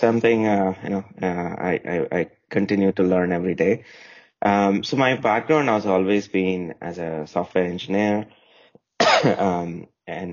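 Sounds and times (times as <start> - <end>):
speech: 0.0 - 8.4, 9.1 - 10.3
cough: 9.0 - 9.7.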